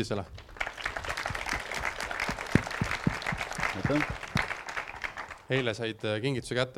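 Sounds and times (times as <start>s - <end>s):
speech: 0.0s - 0.4s, 3.8s - 4.2s, 5.5s - 6.7s
crowd applauding with dense continuous clapping: 0.4s - 5.7s.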